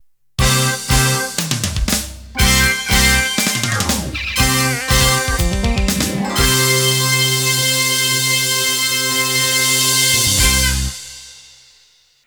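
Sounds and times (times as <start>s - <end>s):
rock music ending: 0.4s - 11.6s.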